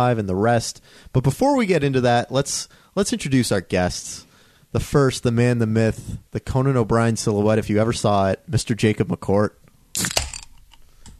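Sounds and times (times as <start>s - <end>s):
speech: 0.0s - 10.3s
cold drink can popped open with a fizzing hiss: 10.0s - 10.6s.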